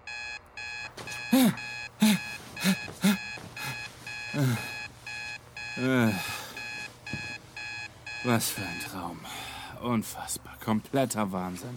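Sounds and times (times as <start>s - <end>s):
electronic alarm clock beeping: 0.0s - 9.4s
speech: 8.4s - 11.7s.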